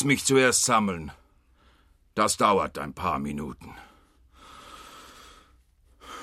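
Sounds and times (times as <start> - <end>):
speech: 0.0 - 1.2, 2.2 - 3.9
faint soft airy breathing from a man: 1.3 - 2.1, 3.7 - 6.2.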